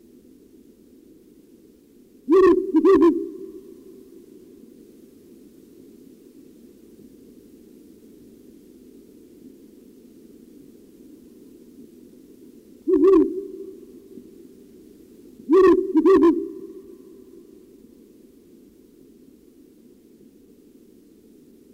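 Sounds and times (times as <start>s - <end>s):
low background hum: 0.0s - 21.7s
Ural owl hooting: 2.3s - 4.2s, 12.9s - 14.3s, 15.5s - 17.6s.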